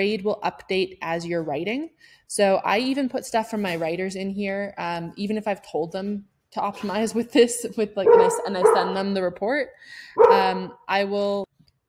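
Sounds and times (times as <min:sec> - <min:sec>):
speech: 0:00.0 - 0:11.5
dog barking: 0:08.1 - 0:09.2, 0:10.2 - 0:10.6.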